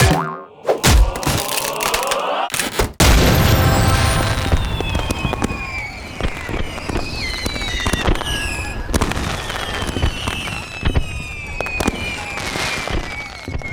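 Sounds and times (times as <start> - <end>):
item crate smashing: 0.0 - 4.2
fireworks: 3.0 - 13.7.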